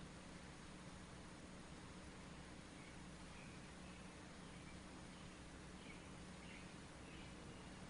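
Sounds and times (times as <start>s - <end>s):
steady broadband noise: 0.0s - 7.8s
birds chirping: 2.0s - 7.8s.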